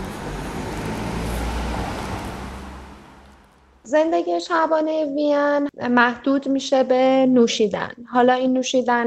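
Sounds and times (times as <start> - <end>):
car engine: 0.0 - 3.8
speech: 3.9 - 9.0.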